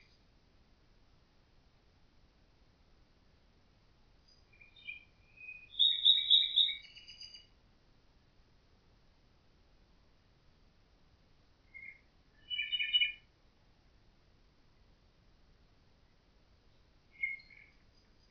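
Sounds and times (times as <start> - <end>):
Common nightingale song: 0.0 - 0.4, 4.1 - 7.6, 11.4 - 13.8, 16.0 - 18.2.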